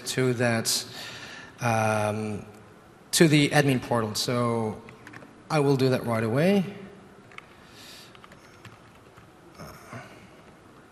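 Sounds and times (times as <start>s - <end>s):
soft hiss: 0.0s - 10.9s
speech: 0.2s - 4.9s, 5.5s - 6.8s
typing on a computer keyboard: 4.9s - 5.3s, 7.3s - 9.3s.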